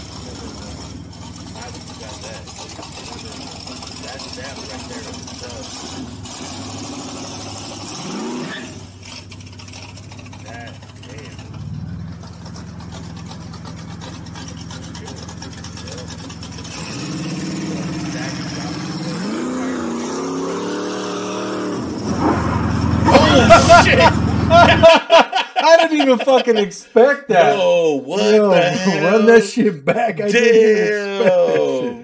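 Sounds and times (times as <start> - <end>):
car engine idling and revving: 0.0 - 24.9
laughter: 23.1 - 32.0
speech: 25.7 - 31.8.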